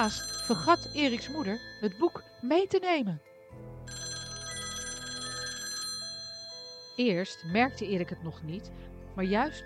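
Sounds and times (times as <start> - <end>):
telephone bell ringing in a rapid metallic trill: 0.0 - 2.7, 3.9 - 7.8
speech: 0.0 - 4.0, 7.0 - 9.6.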